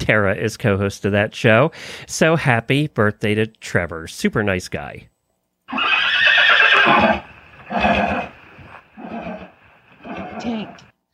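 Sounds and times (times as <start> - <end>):
speech: 0.0 - 5.1, 5.7 - 6.1, 6.8 - 8.1
horse whinnying: 5.7 - 10.9.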